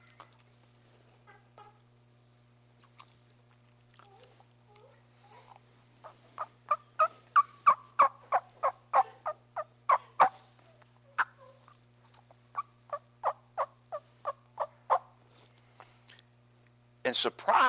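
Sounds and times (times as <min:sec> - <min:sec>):
faint low hum: 0:00.0 - 0:17.6
soft turkey tree yelps made by a person calling to a gobbler: 0:06.4 - 0:10.4, 0:12.5 - 0:15.1
speech: 0:17.1 - 0:17.6.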